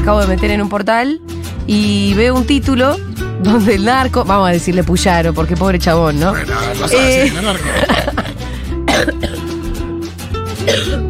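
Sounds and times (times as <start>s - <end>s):
speech: 0.0s - 8.1s
music with sustained tones: 6.1s - 11.0s
laughter: 6.5s - 8.6s
person coughing: 7.2s - 9.6s, 10.6s - 11.0s.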